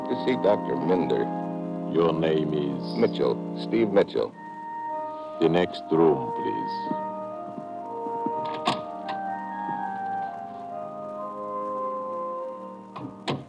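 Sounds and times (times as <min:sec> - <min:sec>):
steady humming tonal background: 0:00.0 - 0:13.4
speech: 0:00.1 - 0:04.4, 0:05.4 - 0:07.1
muted knocks and clicks: 0:06.9 - 0:10.4, 0:13.0 - 0:13.4
door clicking softly shut: 0:07.6 - 0:10.4, 0:13.0 - 0:13.4.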